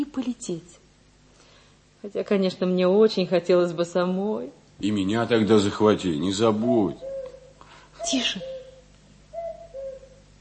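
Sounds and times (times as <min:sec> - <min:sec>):
faint hum: 0:00.0 - 0:10.3
speech: 0:00.1 - 0:00.8, 0:02.0 - 0:07.1, 0:08.0 - 0:08.6
cuckoo calling: 0:06.2 - 0:10.3.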